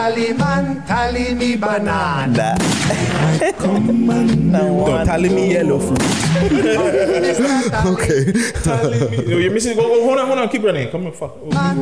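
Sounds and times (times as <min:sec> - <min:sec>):
sustained singing in a busy music track: 0:00.0 - 0:09.2, 0:11.4 - 0:11.8
speech: 0:00.0 - 0:11.8
heavy beat in a busy music track: 0:00.3 - 0:08.0
laughter: 0:02.5 - 0:10.1
gunshots: 0:02.6 - 0:03.2, 0:06.0 - 0:06.4.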